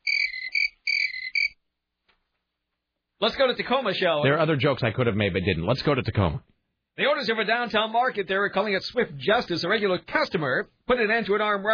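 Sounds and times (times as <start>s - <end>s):
crickets chirping: 0.0s - 1.6s
speech: 3.2s - 11.7s.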